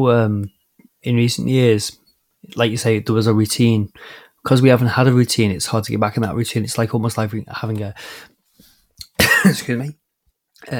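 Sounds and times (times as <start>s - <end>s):
speech: 0.0s - 8.3s, 9.4s - 10.0s, 10.6s - 10.7s
man coughing: 9.2s - 9.9s.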